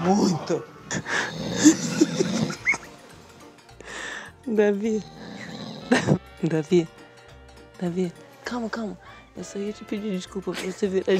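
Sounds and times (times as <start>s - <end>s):
speech: 0.0s - 2.4s, 4.5s - 5.2s, 5.9s - 7.0s, 7.8s - 11.1s
man snoring heavily: 1.0s - 2.7s, 4.2s - 6.2s
breathing: 3.8s - 4.4s.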